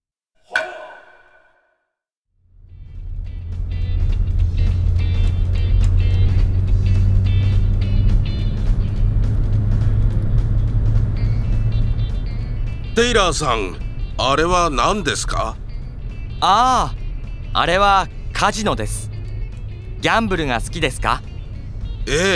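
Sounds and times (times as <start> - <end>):
sharp knock: 0.5 - 1.7
car engine starting and running while driving: 2.6 - 22.0
speech: 13.0 - 15.6, 16.4 - 19.1, 20.0 - 21.3, 22.0 - 22.3.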